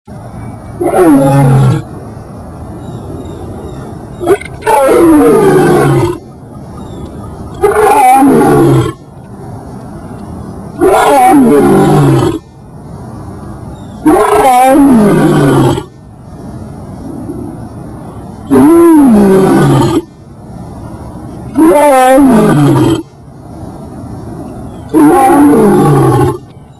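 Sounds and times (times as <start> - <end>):
lion roaring in extreme close up: 0.8 - 1.9, 4.2 - 6.2, 7.6 - 9.0, 10.8 - 12.4, 14.0 - 15.9, 18.5 - 20.0, 21.5 - 23.1, 24.9 - 26.4.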